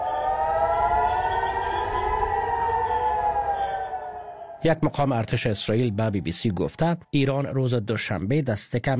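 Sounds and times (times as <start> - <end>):
low rumbling background: 0.0 - 4.9
air raid warning sirens wailing: 0.0 - 6.7
speech: 4.6 - 8.9.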